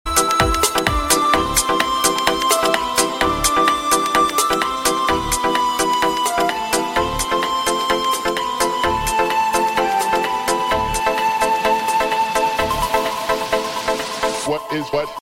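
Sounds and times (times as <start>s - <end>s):
love ringtone melody: 0.1s - 14.3s.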